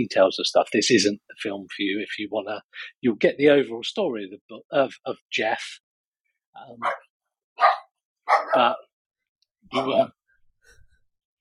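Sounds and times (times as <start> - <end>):
speech: 0.0 - 5.8, 6.6 - 7.7, 8.3 - 8.9, 9.7 - 10.2
dogs barking: 6.8 - 8.7.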